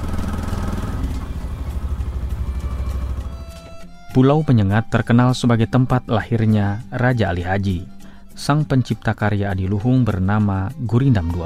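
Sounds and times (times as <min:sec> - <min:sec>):
outboard motor of a small wooden pompong boat running: 0:00.0 - 0:04.2
speech: 0:04.2 - 0:11.4.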